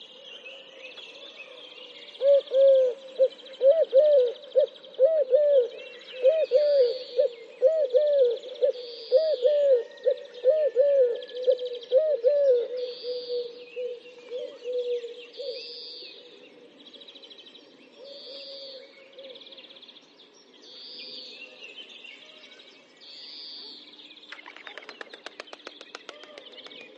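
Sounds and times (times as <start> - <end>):
Eurasian collared dove cooing: 2.2 - 15.6.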